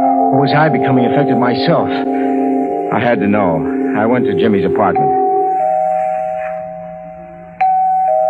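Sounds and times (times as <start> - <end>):
electronic doorbell ringing: 0.0 - 8.2
speech: 0.4 - 2.2, 2.9 - 5.2.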